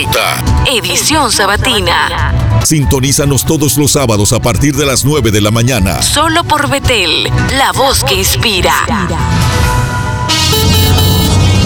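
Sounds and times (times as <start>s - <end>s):
speech: 0.0s - 9.4s
busy traffic rumbling: 9.2s - 11.6s
car horns honking: 10.2s - 11.5s.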